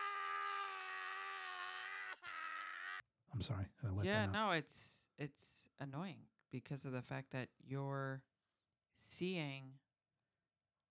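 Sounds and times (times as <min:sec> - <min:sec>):
person screaming loudly in frustration: 0:00.0 - 0:03.0
speech: 0:03.3 - 0:08.3, 0:09.0 - 0:09.8.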